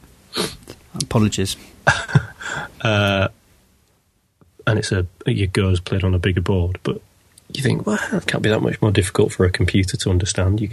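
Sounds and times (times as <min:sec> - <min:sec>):
person sneezing: 0:00.4 - 0:00.8
speech: 0:01.0 - 0:02.0, 0:02.8 - 0:03.4, 0:04.7 - 0:10.7
laughter: 0:01.9 - 0:03.3.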